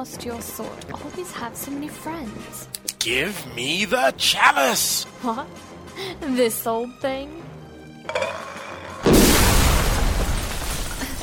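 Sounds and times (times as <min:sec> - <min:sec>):
speech: 0:00.0 - 0:07.5
grenade explosion: 0:09.1 - 0:10.6.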